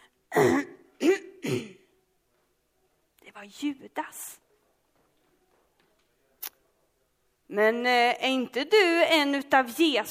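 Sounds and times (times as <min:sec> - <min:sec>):
speech: 0:00.3 - 0:00.7, 0:03.4 - 0:04.4, 0:07.5 - 0:10.0
person clearing throat in a dark cold alley: 0:00.3 - 0:01.9.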